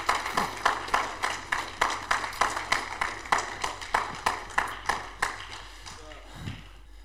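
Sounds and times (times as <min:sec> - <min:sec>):
audience clapping in unison: 0:00.0 - 0:06.9.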